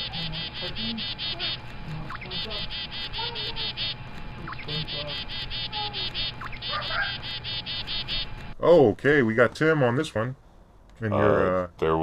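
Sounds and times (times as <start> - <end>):
bird calls: 0.0 - 8.4
loud steady chorus of rapidly pulsing insects: 0.0 - 8.6
speech: 8.6 - 10.4, 11.0 - 12.0.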